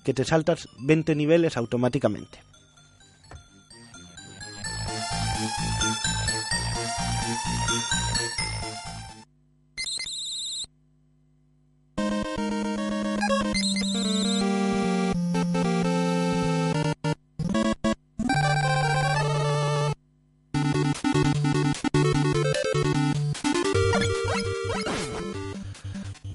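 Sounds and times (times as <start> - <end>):
speech: 0.0 - 2.6, 7.4 - 9.1
loud 8-bit NES video game music with square-wave melodies: 0.0 - 9.3, 12.0 - 26.3.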